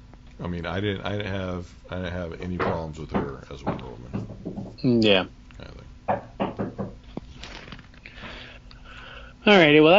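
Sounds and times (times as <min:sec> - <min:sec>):
speech: 0:00.4 - 0:06.2, 0:09.4 - 0:09.9
firm knocks on a door: 0:02.4 - 0:04.8, 0:06.1 - 0:07.1.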